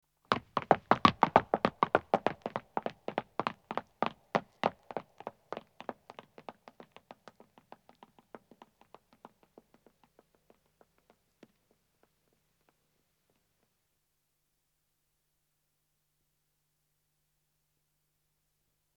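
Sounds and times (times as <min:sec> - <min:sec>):
footsteps of 2 men running on stone and departing: 0:00.3 - 0:12.8.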